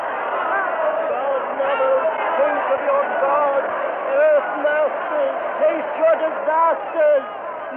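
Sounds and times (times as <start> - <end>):
dense terrified crowd shouting and calling: 0.0 - 7.7
speech: 2.8 - 7.7.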